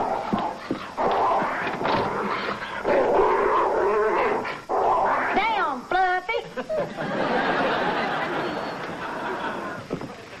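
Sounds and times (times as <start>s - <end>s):
agitated dog growling and snarling: 0.0s - 5.4s
laughter: 6.4s - 10.2s.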